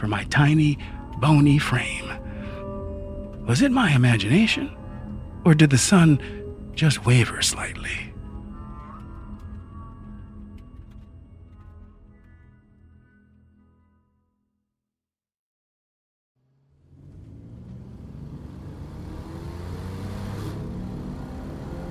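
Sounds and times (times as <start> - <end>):
speech: 0.0 - 2.2, 3.5 - 4.8, 5.4 - 8.1
Corvette engine revving: 16.4 - 21.8.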